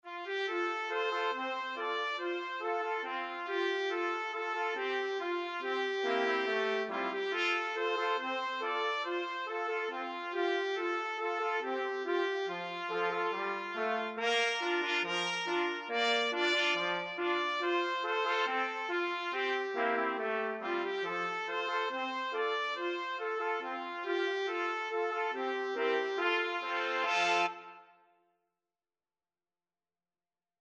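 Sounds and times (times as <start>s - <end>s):
trumpet quartet playing: 0.3s - 27.8s.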